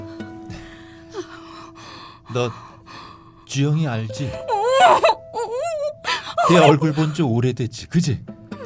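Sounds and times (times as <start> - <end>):
speech: 2.3 - 2.7, 3.5 - 5.2, 6.5 - 8.3
muffled strained moaning scream of gagged woman on a bathroom floor: 4.5 - 7.1.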